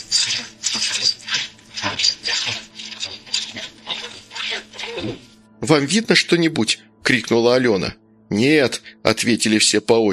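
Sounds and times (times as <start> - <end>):
hand saw cutting wood: 0.0 - 5.3
speech: 5.6 - 10.1.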